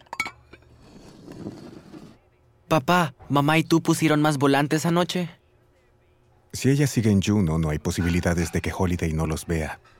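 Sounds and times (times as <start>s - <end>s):
dishes and cutlery clinking: 0.0s - 0.7s
speech: 2.7s - 5.4s, 6.5s - 9.9s.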